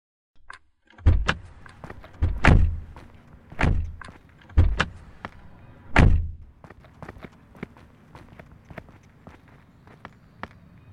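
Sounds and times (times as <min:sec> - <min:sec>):
car doors of a broken-down car unlatching and thudding shut: 0:01.0 - 0:05.0, 0:05.9 - 0:06.5
shuffling footsteps of people climbing out of a car: 0:01.3 - 0:05.6, 0:06.2 - 0:10.7.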